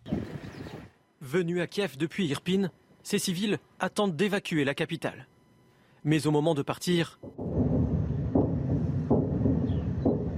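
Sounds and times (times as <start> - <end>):
speech: 1.2 - 5.3, 6.0 - 7.4
dull booming explosions from continuous shelling in the suburbs of Kyiv: 7.3 - 10.3
steady low rumble: 7.4 - 10.3.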